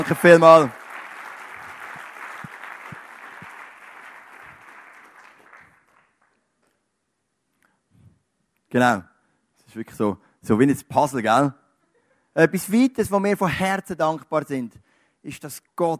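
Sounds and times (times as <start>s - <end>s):
speech: 0.0s - 0.8s, 8.7s - 9.1s, 9.8s - 11.6s, 12.4s - 15.9s
audience applauding: 0.0s - 6.4s.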